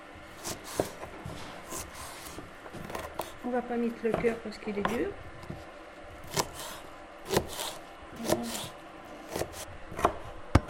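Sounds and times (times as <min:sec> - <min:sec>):
knife cutting food into thin slices: 0:00.4 - 0:03.4, 0:06.2 - 0:10.6
speech: 0:03.4 - 0:05.3.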